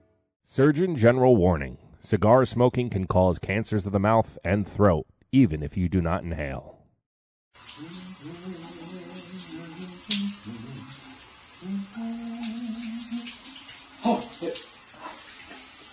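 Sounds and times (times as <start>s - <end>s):
speech: 0.5s - 6.7s
shower water running: 7.6s - 15.9s.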